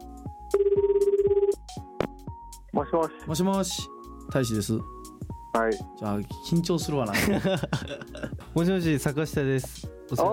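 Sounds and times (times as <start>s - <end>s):
warbling pulsed telephone ringback tone on an outgoing call: 0.5s - 1.6s
speech: 2.9s - 5.0s, 5.6s - 10.3s
laughter: 7.1s - 8.4s.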